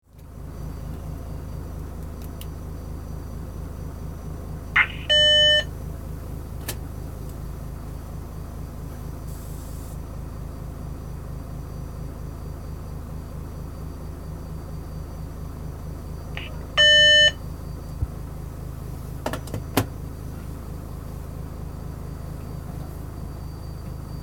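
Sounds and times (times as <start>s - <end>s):
vehicle interior driving noise at start of journey: 0.0s - 24.2s.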